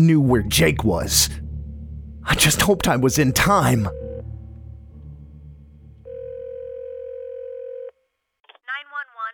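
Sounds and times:
speech: 0:00.0 - 0:01.4, 0:02.2 - 0:04.0
low rumbling hum: 0:00.2 - 0:07.1
phone dial tone: 0:06.1 - 0:08.0.

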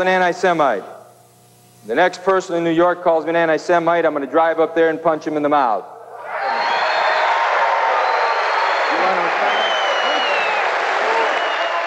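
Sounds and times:
speech: 0:00.0 - 0:00.9, 0:01.8 - 0:06.0
large crowd applauding: 0:06.4 - 0:11.8
large crowd laughing: 0:08.8 - 0:11.8.

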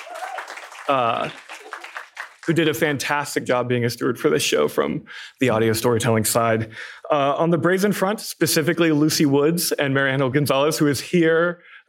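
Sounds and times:
person whooping or cheering: 0:00.0 - 0:01.9
audience clapping: 0:00.0 - 0:03.1
speech: 0:00.9 - 0:01.5, 0:02.4 - 0:11.8.

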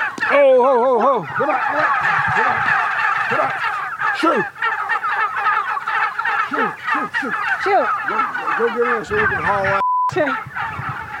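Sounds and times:
large flock of turkeys gobbling: 0:00.0 - 0:11.1
speech: 0:00.6 - 0:04.6, 0:07.0 - 0:10.6
electronic beep: 0:09.8 - 0:10.2.

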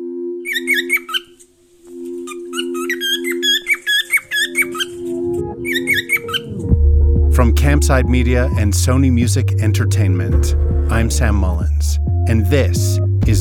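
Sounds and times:
bird squawking: 0:00.4 - 0:06.6
speech: 0:07.4 - 0:13.3.

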